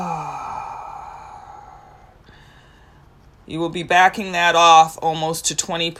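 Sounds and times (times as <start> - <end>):
deep breath let out in a sigh: 0.0 - 3.1
speech: 3.5 - 5.9.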